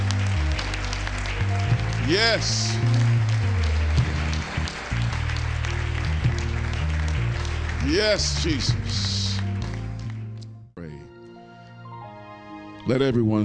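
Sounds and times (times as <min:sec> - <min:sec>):
audience clapping in praise: 0:00.0 - 0:10.6
sustained low instrumental tones: 0:00.0 - 0:13.4
speech: 0:02.1 - 0:02.9, 0:07.9 - 0:09.2, 0:12.9 - 0:13.4.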